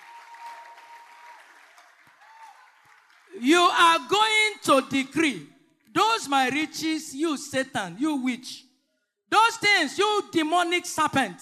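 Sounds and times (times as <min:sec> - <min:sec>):
audience clapping: 0:00.0 - 0:03.5
speech: 0:03.3 - 0:08.7, 0:09.3 - 0:11.4.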